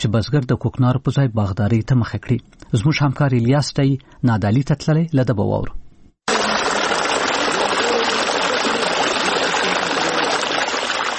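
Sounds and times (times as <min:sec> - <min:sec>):
speech: 0:00.0 - 0:05.8
cold spring water gushing: 0:06.3 - 0:11.1.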